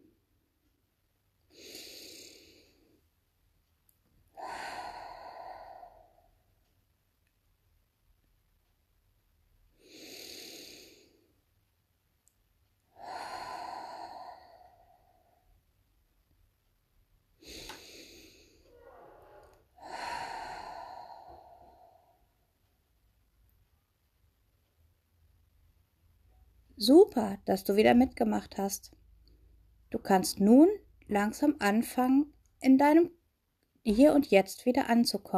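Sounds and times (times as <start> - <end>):
person taking deep breaths during a short meditation: 1.5 - 3.0, 4.3 - 6.7, 9.7 - 11.4, 12.7 - 15.7, 17.4 - 22.5
speech: 26.8 - 29.0, 29.9 - 33.2, 33.8 - 35.3.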